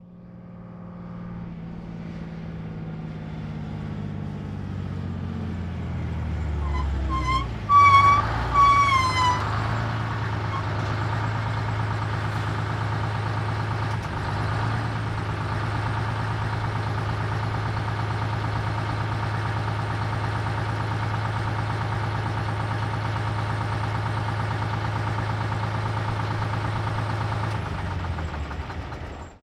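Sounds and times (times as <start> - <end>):
1948 diesel truck slowing to a stop: 0.1 - 29.4
1948 diesel truck engine idling: 3.8 - 29.4
1948 diesel truck brakes: 6.5 - 13.6.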